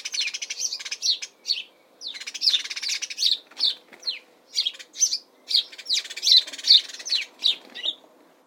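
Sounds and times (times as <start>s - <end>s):
house sparrow chirping with rapid repeated harsh chirps in Suffolk UK in spring: 0.0s - 8.0s.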